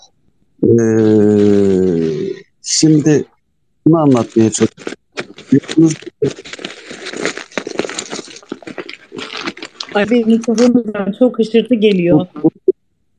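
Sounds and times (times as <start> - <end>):
speech: 0.6 - 1.6, 2.7 - 6.7, 10.0 - 12.6
paper rustling into an open microphone: 4.1 - 10.8.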